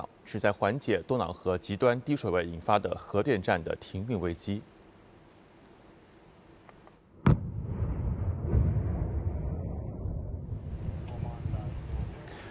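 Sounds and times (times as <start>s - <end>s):
speech: 0.3s - 4.7s
controlled demolition blast in a canal: 7.2s - 11.9s.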